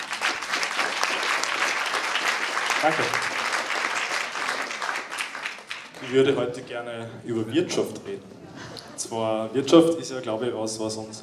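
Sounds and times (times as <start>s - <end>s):
audience applauding as a speaker is called onto a stage: 0.0s - 6.6s
speech: 2.8s - 3.3s, 6.0s - 8.4s, 9.0s - 11.2s.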